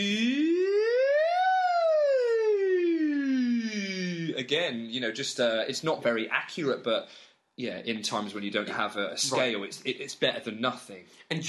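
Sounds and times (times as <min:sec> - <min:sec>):
single voice singing a siren vocal warm-up: 0:00.0 - 0:04.9
speech: 0:04.4 - 0:11.4.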